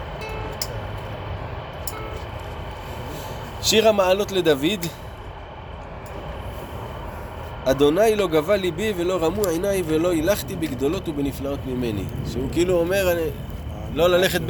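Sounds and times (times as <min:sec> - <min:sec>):
train rumbling past: 0:00.0 - 0:14.4
speech: 0:03.6 - 0:05.0, 0:07.7 - 0:14.4.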